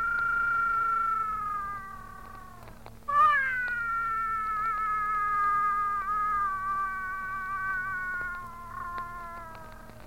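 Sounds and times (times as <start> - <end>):
cat giving a long drawn-out meow: 0.0 - 10.0.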